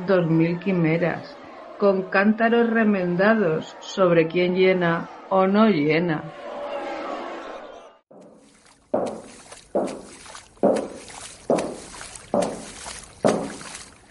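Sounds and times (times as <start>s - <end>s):
speech: 0.1s - 6.4s
heavy footsteps of a water carrier: 8.1s - 14.0s.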